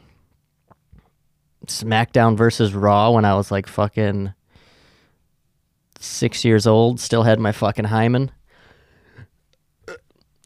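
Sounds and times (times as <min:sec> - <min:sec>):
speech: 0:01.7 - 0:04.4, 0:06.0 - 0:08.4
quiet breathing: 0:04.4 - 0:05.4, 0:08.4 - 0:09.4
attempted burp: 0:09.8 - 0:10.3.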